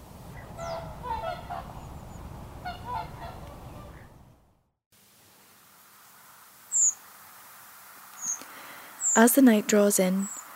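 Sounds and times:
flock of overwintering whooper swans calling on the Lough Neagh shoreline: 0.2 - 4.4
speech: 9.2 - 10.4.

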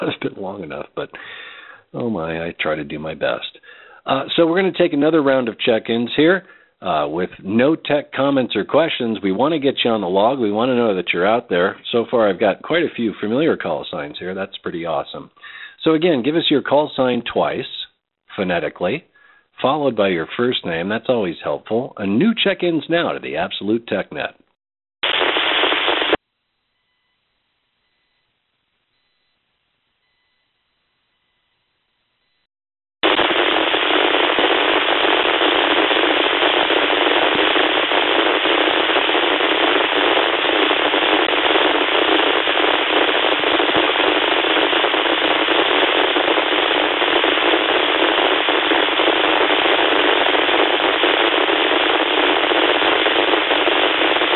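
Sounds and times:
radio static on an amateur radio net frequency: 0.0 - 1.2, 25.0 - 26.2, 33.0 - 54.3
speech: 0.1 - 17.8, 18.4 - 24.4.

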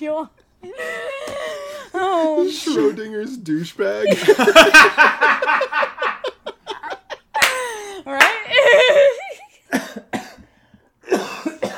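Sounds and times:
speech: 0.0 - 1.1, 2.2 - 5.9
laughter: 4.0 - 9.7
harsh coughing: 9.7 - 11.7.

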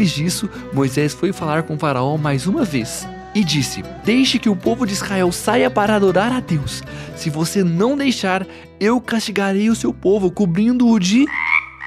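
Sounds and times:
speech: 0.0 - 11.5
chorus of frogs croaking: 11.3 - 11.8.

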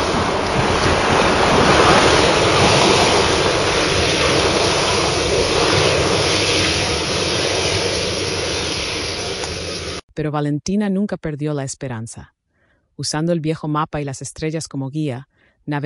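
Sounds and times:
giant ocean waves crashing: 0.0 - 10.0
strong gusting wind: 0.0 - 10.0
speech: 10.2 - 12.4, 13.0 - 15.8.

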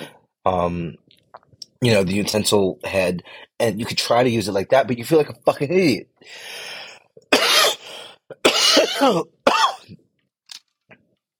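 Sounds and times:
speech: 0.4 - 1.2, 1.8 - 7.4, 8.8 - 10.0
harsh coughs: 7.3 - 10.0.

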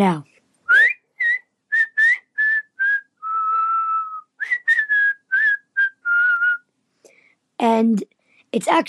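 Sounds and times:
speech: 0.0 - 0.3, 7.8 - 8.8
child whistling a tune: 0.7 - 6.6.

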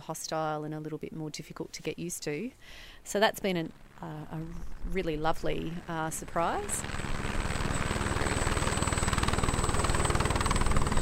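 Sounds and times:
speech: 0.0 - 7.1
helicopter engine drone and whine: 3.6 - 11.0
helicopter rotor thumping in a fast steady chop: 3.7 - 11.0.

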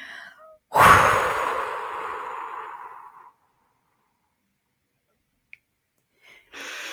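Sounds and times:
forceful exhale during a breathing exercise: 0.7 - 3.4.

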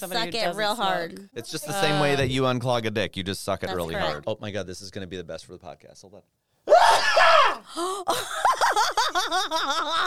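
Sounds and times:
speech: 0.0 - 7.1, 7.7 - 10.0
big explosive sneeze: 6.7 - 7.7
rhythmic rising-and-falling laughter: 8.1 - 10.0.

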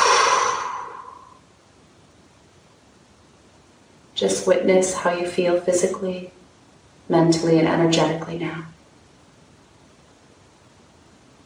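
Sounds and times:
deep breathy exhale during chanting meditation: 0.0 - 1.4
speech: 4.2 - 6.4, 7.1 - 8.7.

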